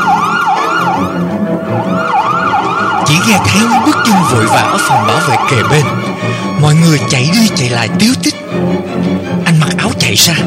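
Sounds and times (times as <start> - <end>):
ambulance siren wailing: 0.0 - 7.7
speech: 3.3 - 10.4.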